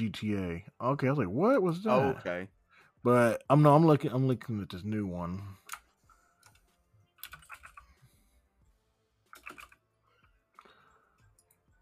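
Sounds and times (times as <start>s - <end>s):
speech: 0.0s - 5.6s
computer keyboard typing: 5.6s - 8.0s, 9.3s - 9.8s.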